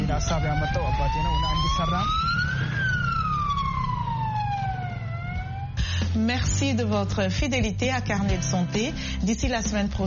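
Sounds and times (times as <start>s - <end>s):
siren of a cheap ambulance built from easy-to-find materials: 0.0s - 6.2s
steady low engine or traffic rumble: 0.0s - 7.8s
speech: 0.2s - 2.8s, 6.2s - 10.0s.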